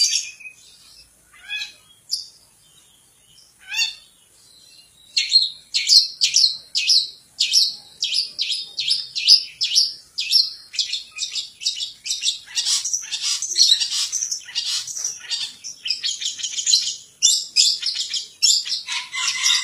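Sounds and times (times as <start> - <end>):
long-tailed shrike song with high notes and sharp scratchy chirps: 0.0 - 19.6.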